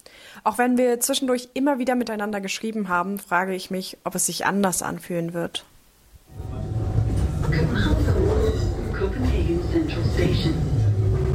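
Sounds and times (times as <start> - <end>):
speech: 0.4 - 5.8, 9.5 - 10.8
low roar of wheels and carriage inside a moving S-Bahn commuter train in Copenhagen: 6.3 - 11.3.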